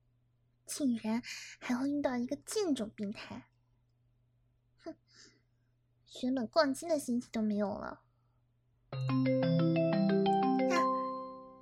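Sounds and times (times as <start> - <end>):
speech: 0.7 - 3.5, 4.8 - 5.4, 6.1 - 8.0, 8.9 - 9.8
mobile phone ringtone with bright electronic melody: 9.0 - 11.5.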